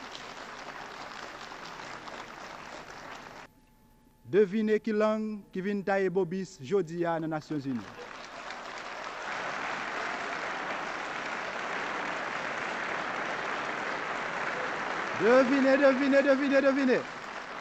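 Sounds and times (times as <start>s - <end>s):
audience applause: 0.0s - 3.5s, 7.6s - 17.5s
speech: 4.3s - 8.0s, 15.2s - 17.2s.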